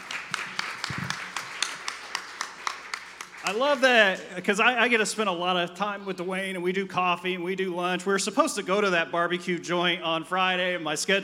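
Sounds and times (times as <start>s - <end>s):
audience applause: 0.0s - 4.4s
speech: 3.5s - 11.2s.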